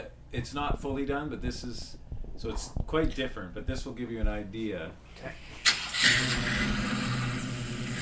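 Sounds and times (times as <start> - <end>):
speech: 0.0 - 7.0
car engine cranking then idling: 5.6 - 8.0.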